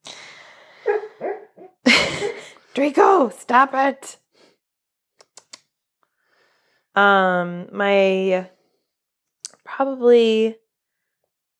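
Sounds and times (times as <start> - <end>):
dog letting out a sharp huff: 0.8 - 1.7
dog whimpering while dreaming: 0.9 - 1.7
speech: 2.8 - 4.2, 7.0 - 8.6, 9.7 - 10.6.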